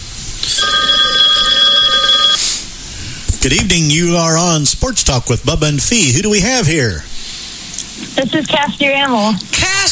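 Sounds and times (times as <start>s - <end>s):
hiss: 0.0s - 9.9s
electronic telephone ring for an incoming caller: 0.4s - 2.6s
speech: 3.4s - 7.2s, 8.2s - 9.9s.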